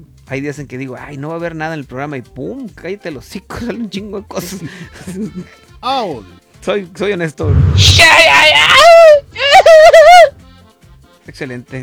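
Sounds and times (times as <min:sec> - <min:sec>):
speech: 0:00.0 - 0:08.9, 0:11.3 - 0:11.8
loud high-pitched wavering scream: 0:07.4 - 0:10.3.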